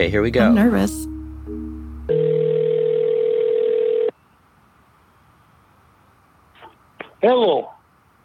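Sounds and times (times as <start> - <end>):
speech: 0.0 - 1.1, 7.2 - 7.8
loud steady telephone dial tone: 2.1 - 4.1.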